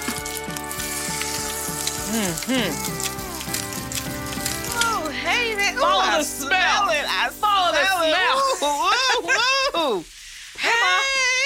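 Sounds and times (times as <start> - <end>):
crab cakes frying in vegetable oil in a hot cast iron skillet: 0.0 - 5.2
tonal music: 0.0 - 9.0
speech: 2.1 - 3.1, 5.2 - 10.1.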